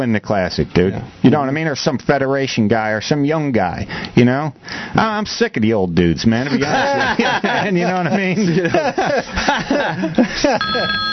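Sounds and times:
speech: 0.0 - 11.1
laughter: 6.5 - 11.0
telephone ringing with a steady electronic tone for an incoming call: 10.6 - 11.1.

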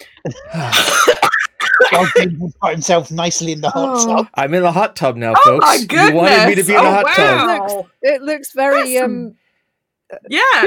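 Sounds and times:
speech: 0.2 - 9.4, 10.1 - 10.6
person coughing after choking: 0.3 - 2.4.

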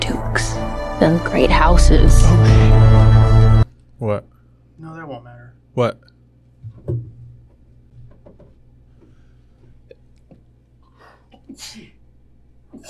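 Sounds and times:
low steady hum: 0.0 - 12.8
speech: 1.0 - 2.8, 4.0 - 6.0
person sneezing: 11.0 - 12.0.

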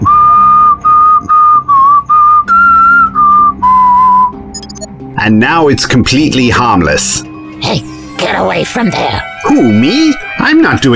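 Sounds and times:
person whistling a short steady tune: 0.0 - 4.9
speech: 5.2 - 10.9.

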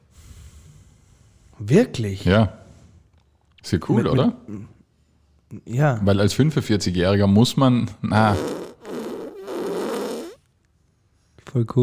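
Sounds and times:
speech: 1.6 - 2.6, 3.6 - 4.8, 5.5 - 8.6, 11.6 - 11.8
buzzy fart sound effect from a soundboard button: 8.2 - 10.4.

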